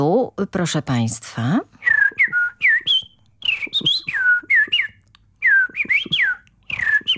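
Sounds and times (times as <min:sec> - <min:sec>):
speech: 0:00.0 - 0:01.8
bird imitator whistling an imitation of blackbird song in a radio studio: 0:01.8 - 0:07.1.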